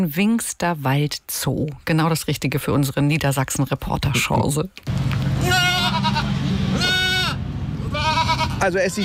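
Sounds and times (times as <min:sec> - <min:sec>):
speech: 0:00.0 - 0:06.2, 0:08.6 - 0:09.0
outdoor ambience: 0:00.0 - 0:09.0
goats bleating in a zoo enclosure: 0:05.3 - 0:09.0.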